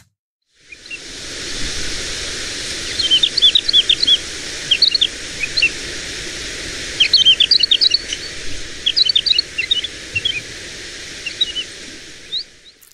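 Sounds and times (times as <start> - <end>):
outdoor background of insects hissing: 0.6 - 12.9
woodlark singing: 2.2 - 12.9.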